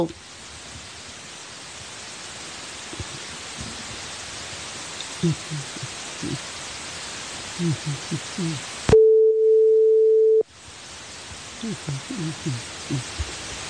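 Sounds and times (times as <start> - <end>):
people speaking: 5.2 - 6.4, 7.6 - 8.6, 11.6 - 13.3
phone line tone after a dropped call: 8.9 - 10.4.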